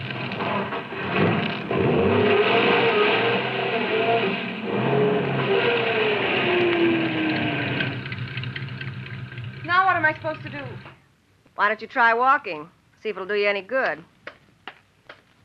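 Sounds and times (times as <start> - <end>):
car engine revving and straining as car backs off road: 0.0 - 10.9
speech: 11.6 - 14.1.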